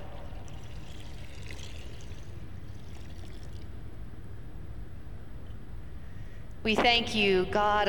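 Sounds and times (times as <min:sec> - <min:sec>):
water pouring and splashing: 0:00.0 - 0:03.7
speech: 0:06.6 - 0:07.8.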